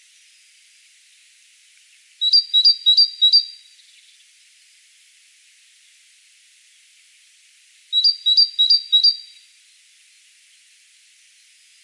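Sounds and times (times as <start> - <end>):
great tit Parus major singing two-note phrases: 2.2 - 3.5, 7.9 - 9.4.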